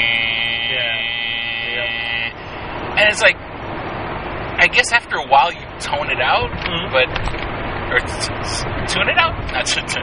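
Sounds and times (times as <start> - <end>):
voice imitating the buzzing hum of an AM radio: 0.0 - 2.4
speech: 3.0 - 3.5, 4.6 - 10.0.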